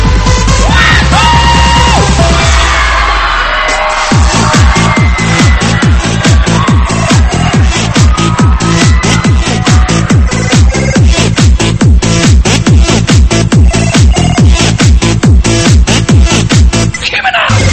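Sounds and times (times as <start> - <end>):
crowd screaming and cheering: 0.0 - 15.2
thumping dance music: 0.0 - 17.7.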